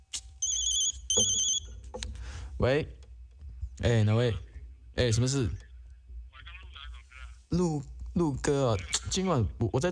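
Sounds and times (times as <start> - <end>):
electronic telephone ringtone: 0.4 - 1.7
speech: 1.2 - 1.4, 2.6 - 3.0, 3.8 - 5.6, 7.5 - 9.9.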